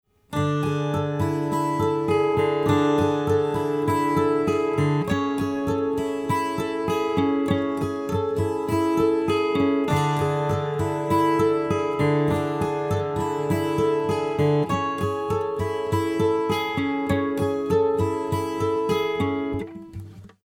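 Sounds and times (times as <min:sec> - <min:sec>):
dry 12-string guitar: 0:00.1 - 0:20.4.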